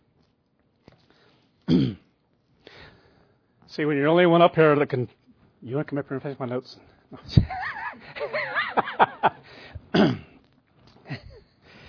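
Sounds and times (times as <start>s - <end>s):
harsh throat clear from someone with a tickle in the throat: 1.6s - 2.1s, 9.9s - 10.4s
speech: 3.8s - 7.8s
laughter: 7.4s - 9.5s.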